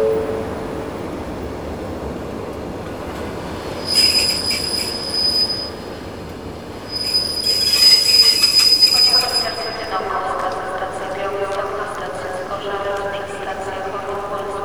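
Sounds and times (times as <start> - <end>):
train rumbling on rails: 0.0 - 14.6
high metallic train wheel squeals: 3.9 - 5.9, 6.8 - 9.9.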